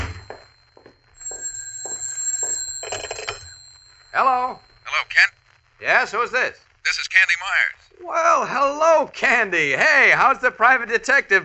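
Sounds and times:
telephone bell ringing: 0.0 - 5.4
speech: 4.2 - 6.6, 7.2 - 11.4.

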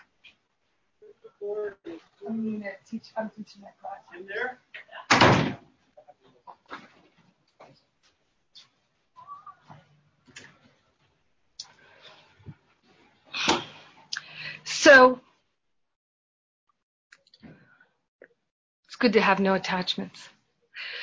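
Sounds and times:
speech: 1.2 - 5.0, 14.8 - 15.3, 19.0 - 21.0
door thudding shut: 5.1 - 5.7.

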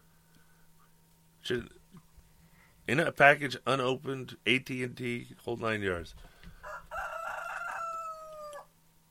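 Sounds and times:
speech: 1.5 - 1.8, 2.9 - 6.3
rooster crowing: 6.6 - 8.8.

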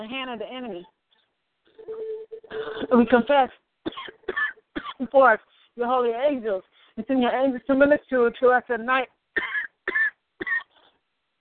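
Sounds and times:
speech: 0.0 - 1.0, 1.8 - 4.4, 5.0 - 9.5
person clearing throat during a prayer: 2.5 - 3.0, 3.9 - 5.0.

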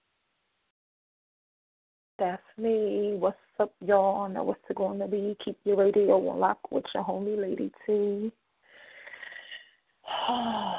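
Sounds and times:
speech: 2.2 - 8.4, 10.1 - 10.7
deep breath in: 8.6 - 10.7.

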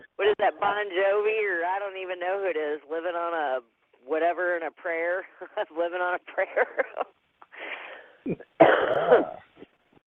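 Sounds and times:
speech: 0.2 - 9.4
person coughing harshly: 8.3 - 9.6.

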